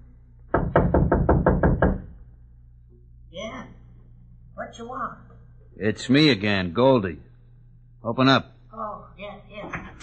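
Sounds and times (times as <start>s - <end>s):
faint low hum: 0.0s - 10.0s
knocking on the wooden door of a shanty by the freight yards: 0.5s - 2.2s
speech: 4.7s - 7.3s, 8.0s - 8.5s.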